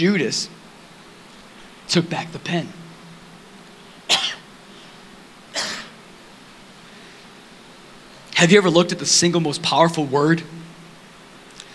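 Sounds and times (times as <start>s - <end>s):
speech: 0.0s - 0.6s, 1.9s - 2.8s, 8.4s - 10.6s
person coughing from a tickle in the throat: 4.1s - 4.4s, 5.5s - 6.0s.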